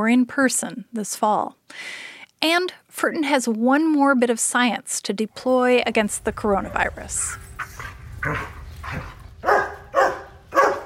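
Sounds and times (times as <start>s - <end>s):
speech: 0.0s - 7.4s, 8.2s - 9.1s
dog barking: 7.7s - 10.8s.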